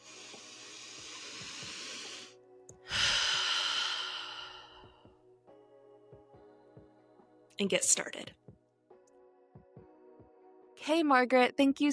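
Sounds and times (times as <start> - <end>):
deep breath during a relaxation exercise: 0.0 - 5.2
speech: 7.6 - 8.5, 10.9 - 11.9.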